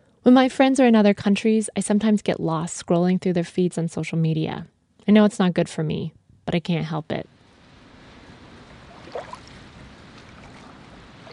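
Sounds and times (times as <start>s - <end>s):
speech: 0.2s - 7.3s
wind noise: 7.2s - 11.3s
wash of water from boats passing: 8.0s - 11.3s.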